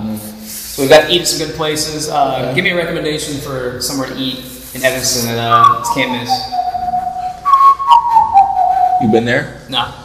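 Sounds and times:
speech: 0:00.8 - 0:06.5, 0:09.0 - 0:10.0
person whistling a short made-up tune: 0:05.5 - 0:09.2.

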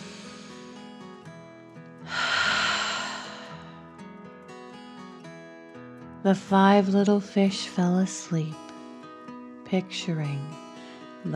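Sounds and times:
deep breath in and out in a calming breathing exercise: 0:02.0 - 0:03.9
speech: 0:06.2 - 0:08.6, 0:09.7 - 0:10.6.

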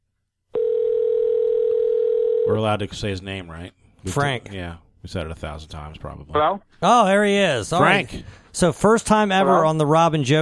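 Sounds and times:
telephone dial tone while placing a call: 0:00.6 - 0:02.5
speech: 0:02.5 - 0:10.4.

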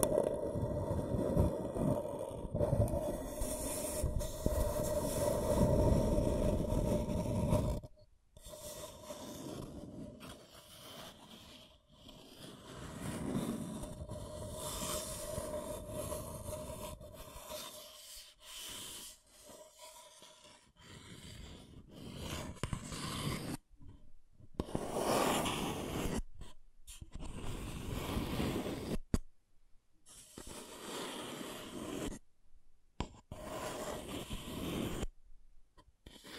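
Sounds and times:
ASMR scratching and tracing strokes rasping: 0:00.0 - 0:29.2, 0:30.0 - 0:32.2, 0:33.0 - 0:35.2, 0:35.8 - 0:36.3.

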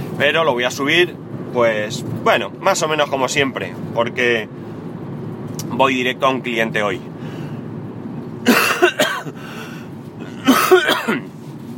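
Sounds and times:
speech: 0:00.2 - 0:04.7, 0:05.7 - 0:07.1
harsh wet coughing: 0:08.4 - 0:09.4, 0:10.2 - 0:11.4.

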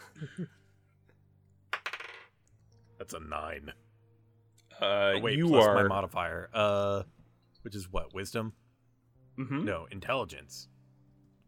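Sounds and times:
speech: 0:00.2 - 0:00.6, 0:03.1 - 0:03.9, 0:04.8 - 0:08.6, 0:09.4 - 0:10.7
dice rolled for a religion check rattling across a hard surface: 0:01.7 - 0:02.3.

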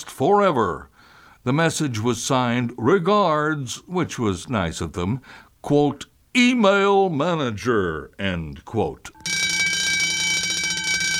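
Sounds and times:
speech: 0:00.2 - 0:09.4
alarm bell ringing: 0:09.2 - 0:11.1.

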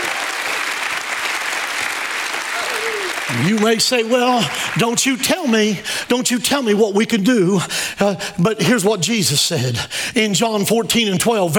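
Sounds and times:
large audience applauding: 0:00.0 - 0:05.6
speech: 0:03.3 - 0:11.5.

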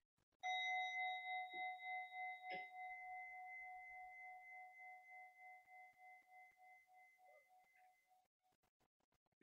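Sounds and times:
meditation bell struck and ringing: 0:00.4 - 0:07.7.

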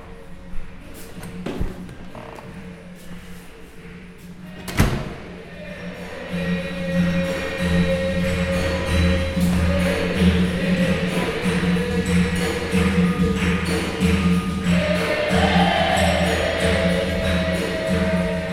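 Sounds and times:
tribal music from a capoeira class in a community centre: 0:03.9 - 0:18.5
door of a community centre being pushed open: 0:04.5 - 0:05.3.

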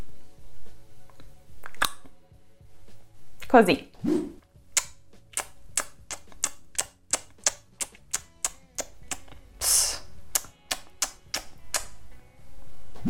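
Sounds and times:
tongue clicking: 0:01.6 - 0:02.1, 0:04.8 - 0:12.0
speech: 0:03.5 - 0:04.4
breathy hiss: 0:09.6 - 0:10.3.

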